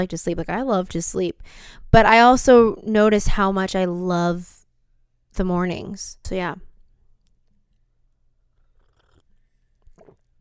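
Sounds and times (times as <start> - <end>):
speech: 0.0 - 4.6, 5.4 - 6.7
person gulping a sip of tea: 9.9 - 10.2.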